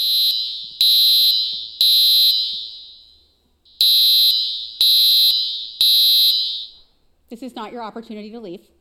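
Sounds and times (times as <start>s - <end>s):
fire alarm blaring: 0.0s - 6.9s
speech: 7.3s - 8.7s.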